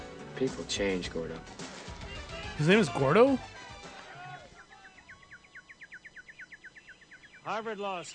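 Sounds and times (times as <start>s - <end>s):
speech: 0.4s - 1.6s, 2.6s - 3.5s, 7.5s - 8.1s
rapid run of high bird tweets: 4.5s - 8.1s.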